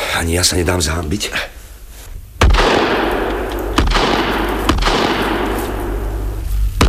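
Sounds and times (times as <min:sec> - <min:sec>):
speech: 0:00.2 - 0:01.6
rifle shots fired while hunting: 0:02.4 - 0:06.8.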